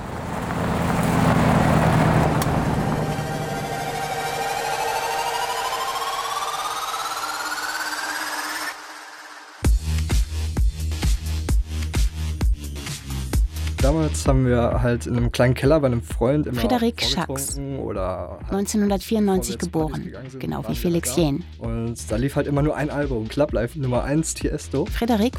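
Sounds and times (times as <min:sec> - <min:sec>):
black rental car engine whine climbing in pitch: 0:00.0 - 0:09.7
black rental car road roar: 0:00.0 - 0:09.7
pulsing rhythmic thump: 0:02.0 - 0:13.9
speech: 0:14.1 - 0:25.3.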